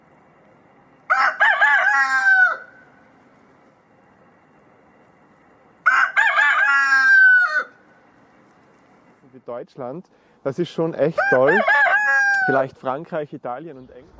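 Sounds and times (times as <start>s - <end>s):
rooster crowing: 1.1s - 3.0s, 5.8s - 7.8s, 11.1s - 12.7s
speech: 9.5s - 11.9s, 12.5s - 14.1s.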